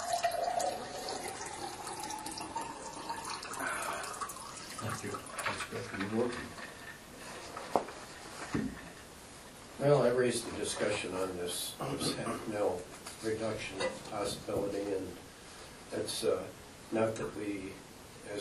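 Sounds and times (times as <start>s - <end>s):
liquid poured in a splashing stream: 0.0s - 7.0s
speech: 5.0s - 6.7s, 9.8s - 15.2s, 15.9s - 18.3s.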